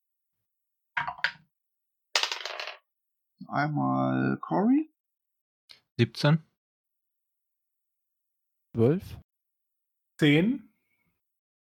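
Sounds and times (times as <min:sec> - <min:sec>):
dice rolling on a hard tabletop for a role-playing game: 0:01.0 - 0:01.5, 0:02.2 - 0:02.9
speech: 0:03.5 - 0:04.9, 0:06.0 - 0:06.5, 0:08.8 - 0:09.2, 0:10.2 - 0:10.7.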